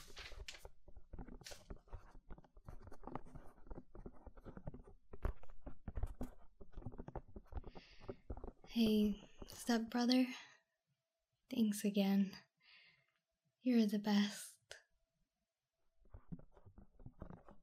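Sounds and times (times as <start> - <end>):
pencil scratching on paper in short quick strokes: 0.0 - 9.8, 16.0 - 17.6
speech: 8.8 - 10.4, 11.6 - 12.4, 13.6 - 14.5.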